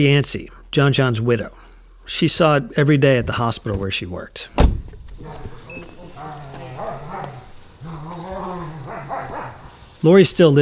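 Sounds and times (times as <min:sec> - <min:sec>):
speech: 0:00.0 - 0:05.6, 0:10.0 - 0:10.5
noisy background: 0:00.0 - 0:10.5
dogs barking and yelping excitedly: 0:05.0 - 0:10.5.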